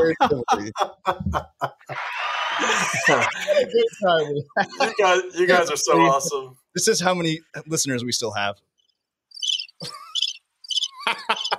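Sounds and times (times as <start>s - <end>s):
laughter: 0.0s - 6.4s, 9.8s - 10.2s, 10.9s - 11.5s
speech: 0.0s - 8.7s, 9.8s - 10.0s
crickets chirping: 9.3s - 11.5s.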